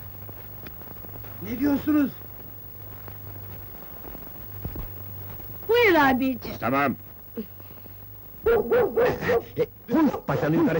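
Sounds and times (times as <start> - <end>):
speech: 1.4 - 2.2, 6.0 - 7.6, 8.4 - 10.7
dog barking: 8.5 - 9.7.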